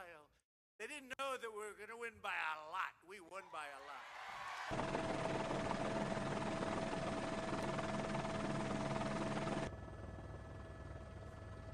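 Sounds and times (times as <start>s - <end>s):
noise: 0.0s - 4.5s
speech: 0.2s - 5.1s
helicopter rotor drone: 4.7s - 11.7s.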